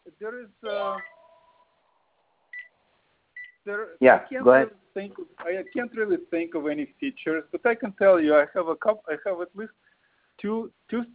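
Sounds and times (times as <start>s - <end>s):
faint phone line hiss: 0.0s - 11.1s
quiet phone tone: 0.1s - 1.7s, 3.4s - 9.7s
speech: 0.2s - 1.2s, 3.6s - 11.1s
phone beeping during a call: 1.0s - 1.4s.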